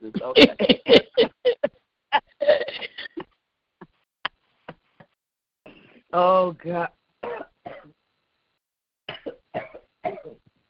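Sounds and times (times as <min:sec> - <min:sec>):
speech: 0:00.0 - 0:01.0
harsh coughing: 0:00.2 - 0:03.4, 0:07.2 - 0:07.9, 0:09.1 - 0:10.4.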